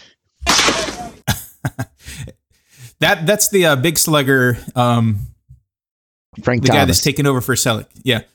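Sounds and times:
Foley bat crack on a baseball from a movie soundtrack: 0:00.4 - 0:01.2
sharp snappy impacts: 0:00.4 - 0:01.2
speech: 0:03.0 - 0:05.3, 0:06.4 - 0:08.3.

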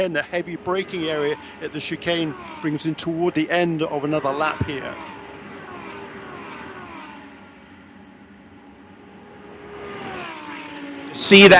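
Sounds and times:
speech: 0:00.0 - 0:05.2, 0:11.3 - 0:11.5
Lamborghini Super Trofeo race car engine roaring at high revs on a straightaway at Road Atlanta: 0:00.0 - 0:11.5.

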